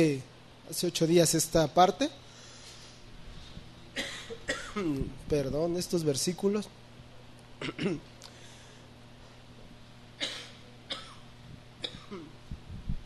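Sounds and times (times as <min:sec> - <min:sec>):
speech: 0:00.0 - 0:02.2, 0:04.8 - 0:06.8, 0:07.6 - 0:08.1
faint steady electrical hum: 0:00.0 - 0:13.0
coughing: 0:03.9 - 0:05.0, 0:07.6 - 0:08.1, 0:10.2 - 0:12.4.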